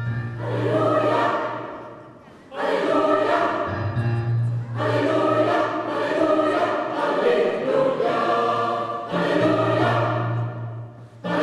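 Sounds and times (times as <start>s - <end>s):
gospel choir singing: 0.1s - 11.4s.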